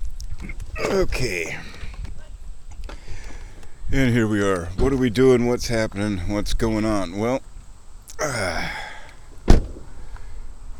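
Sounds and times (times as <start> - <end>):
speech: 0.4 - 1.7, 3.9 - 7.5, 8.2 - 8.8
car door swinging open with a squeaky creak: 9.4 - 9.9
car door shutting with a solid thud: 9.4 - 10.0.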